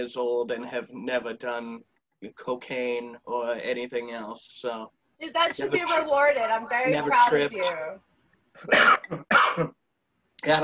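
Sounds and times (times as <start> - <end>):
speech: 0.0 - 9.8, 10.4 - 10.6
harsh raspy coughs: 8.6 - 9.8.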